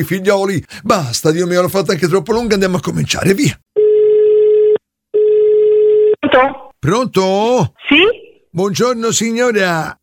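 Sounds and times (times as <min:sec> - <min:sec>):
speech: 0:00.0 - 0:03.6, 0:06.4 - 0:10.0
telephone ringing tone heard on the caller's side: 0:03.8 - 0:06.2.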